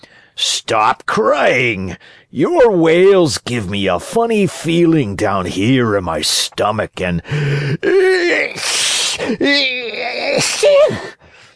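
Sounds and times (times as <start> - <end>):
speech: 0.4 - 11.2
man acting out theatrical sneezes: 7.4 - 11.2.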